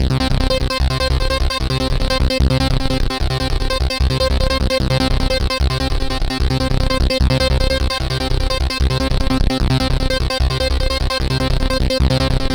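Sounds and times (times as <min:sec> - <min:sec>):
acid techno trance music: 0:00.0 - 0:12.5.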